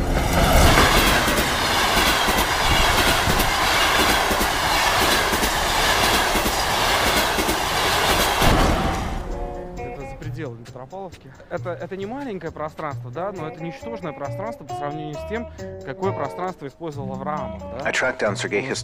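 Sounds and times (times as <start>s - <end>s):
train wheels clickety-clack on rails: 0.0s - 11.3s
loud constant train rumble: 0.0s - 13.4s
speech: 11.2s - 18.8s.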